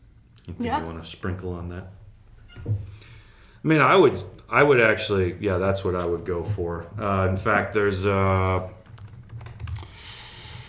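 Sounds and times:
speech: 0.5 - 2.0, 2.6 - 8.8
typing on a computer keyboard: 8.8 - 10.0.

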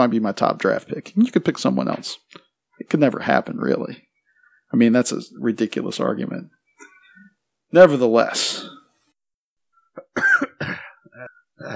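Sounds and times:
speech: 0.0 - 4.1, 4.7 - 6.6, 7.7 - 8.8
person clearing throat: 8.5 - 8.9, 10.0 - 11.7
person coughing: 8.5 - 8.9, 10.0 - 11.7.

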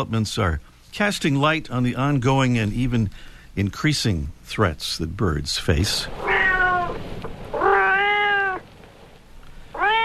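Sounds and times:
speech: 0.0 - 6.3
domestic cat meowing: 6.2 - 8.7, 9.7 - 10.0.

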